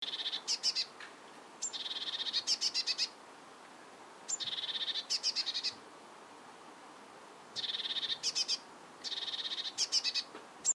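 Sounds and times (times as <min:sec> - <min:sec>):
Eurasian blue tit calling: 0:00.0 - 0:01.0, 0:01.6 - 0:03.2, 0:04.3 - 0:05.8, 0:07.6 - 0:10.7.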